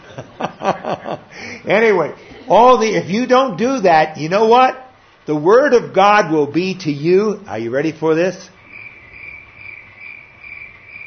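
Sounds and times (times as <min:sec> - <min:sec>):
laughter: 0:00.0 - 0:01.4, 0:02.1 - 0:03.0
low hum: 0:00.0 - 0:11.0
speech: 0:00.9 - 0:08.6
crickets chirping in a high-pitched trill: 0:08.5 - 0:11.0.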